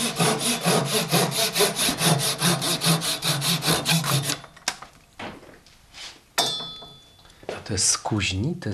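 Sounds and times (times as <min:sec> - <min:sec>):
hand saw cutting wood: 0:00.0 - 0:04.4
speech: 0:07.8 - 0:08.7.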